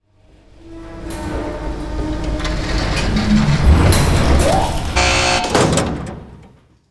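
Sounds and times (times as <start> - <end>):
elevator intro: 0.9 - 6.7.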